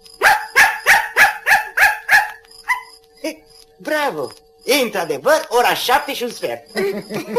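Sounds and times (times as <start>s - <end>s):
dog barking out the time: 0.2s - 2.9s
speech: 3.2s - 7.3s
laughter: 6.7s - 7.3s.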